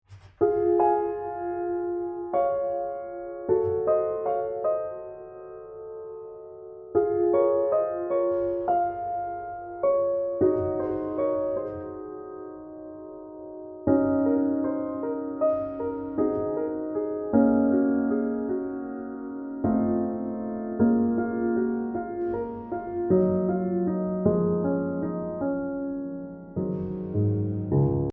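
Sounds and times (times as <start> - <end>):
Steinway piano: 0.0 - 28.1.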